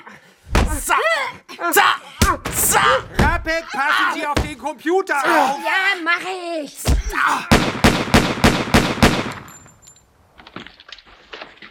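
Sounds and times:
speech: 0:00.8 - 0:07.8
gunshots: 0:06.9 - 0:09.7.

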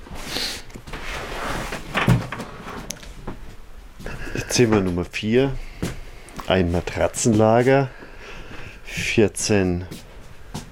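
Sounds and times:
door opening: 0:01.8 - 0:03.1
speech: 0:04.5 - 0:05.7, 0:06.5 - 0:08.0, 0:09.0 - 0:10.0.

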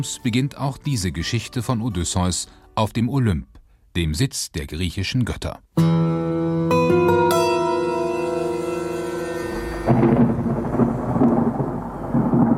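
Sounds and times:
speech: 0:00.0 - 0:07.2
ringing bell-like musical tones: 0:06.7 - 0:11.1
deep loud thunder rumbling: 0:08.9 - 0:12.5.

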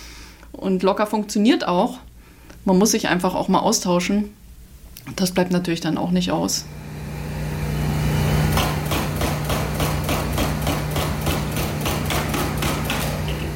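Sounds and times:
speech: 0:00.6 - 0:04.4, 0:05.0 - 0:06.8
constant low engine drone: 0:06.5 - 0:11.5
rapid hammering strikes at a street construction site in Reykjavik: 0:07.7 - 0:13.5.

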